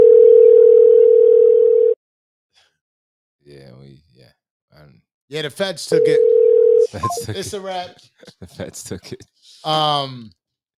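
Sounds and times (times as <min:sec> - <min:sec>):
phone ringback tone of an outgoing call: 0:00.0 - 0:02.0, 0:06.0 - 0:06.9
speech: 0:03.5 - 0:10.4
laughter: 0:06.8 - 0:09.9.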